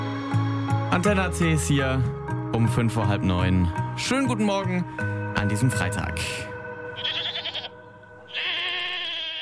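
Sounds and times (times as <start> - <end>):
speech: 1.0 - 6.5
goat bleating: 7.0 - 9.3.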